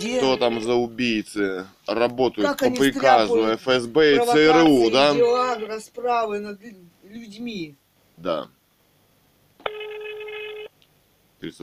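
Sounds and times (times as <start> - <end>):
speech: 0.0 - 8.6, 11.4 - 11.6
telephone ring tone of an unanswered call: 9.6 - 10.8.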